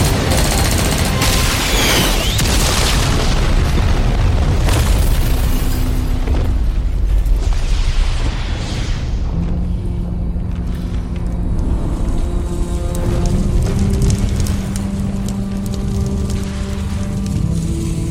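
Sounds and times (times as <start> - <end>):
rapid bursts of gunfire in battle: 0.0 - 4.0
heavy booming explosions in battle: 0.0 - 18.0.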